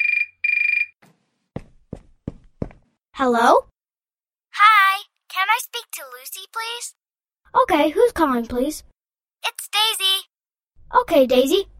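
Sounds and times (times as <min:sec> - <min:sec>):
mobile phone ringing with a bright electronic trill: 0:00.0 - 0:01.0
speech: 0:03.2 - 0:03.7, 0:06.0 - 0:08.9, 0:09.7 - 0:10.3, 0:10.9 - 0:11.7.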